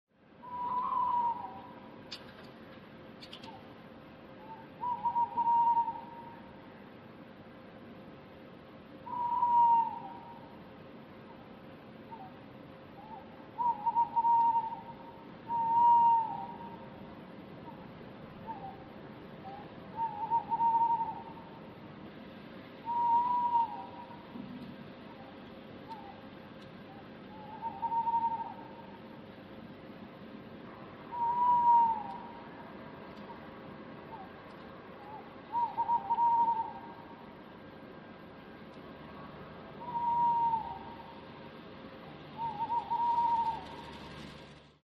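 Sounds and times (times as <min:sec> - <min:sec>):
owl calling: 0:00.4 - 0:01.9, 0:04.4 - 0:06.5, 0:09.0 - 0:10.6, 0:12.1 - 0:12.4, 0:13.0 - 0:17.0, 0:17.6 - 0:21.6, 0:22.8 - 0:24.4, 0:25.1 - 0:26.2, 0:26.9 - 0:29.1, 0:31.1 - 0:32.5, 0:34.0 - 0:34.4, 0:35.0 - 0:37.2, 0:39.8 - 0:41.3, 0:42.4 - 0:44.4.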